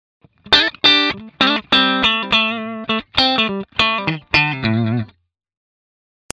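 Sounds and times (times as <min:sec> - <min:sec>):
clean electric guitar through a Vox AC30 amplifier: 0:00.3 - 0:05.2.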